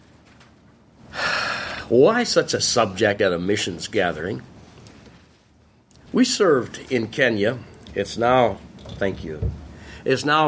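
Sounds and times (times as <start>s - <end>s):
person imitating a sharp gasp for air: 1.1s - 1.9s
speech: 1.9s - 4.5s, 6.2s - 10.4s.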